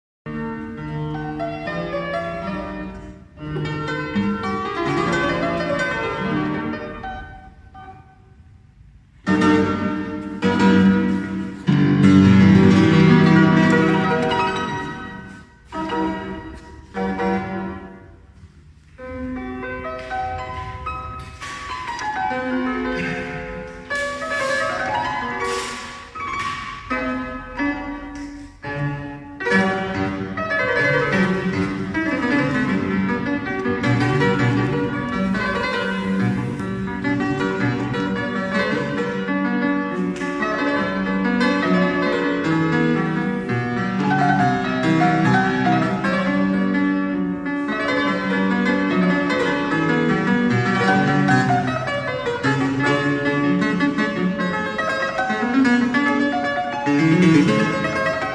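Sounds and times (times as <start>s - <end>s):
fortepiano playing: 0.3s - 58.3s.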